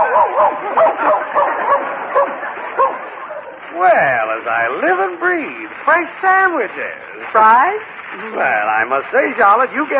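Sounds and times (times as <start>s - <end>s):
dog barking and yipping in high-pitched yaps: 0.0s - 3.6s
speech: 3.8s - 9.9s.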